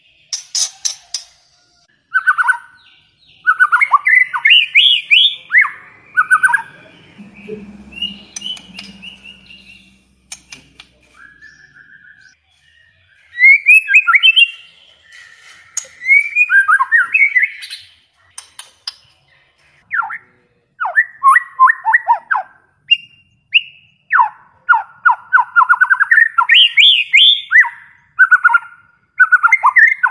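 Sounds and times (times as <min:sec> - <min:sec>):
white-rumped shama song of rich varied whistles and chattering trills: 0:02.1 - 0:19.0, 0:19.8 - 0:30.0
sharp clicks: 0:08.0 - 0:11.0.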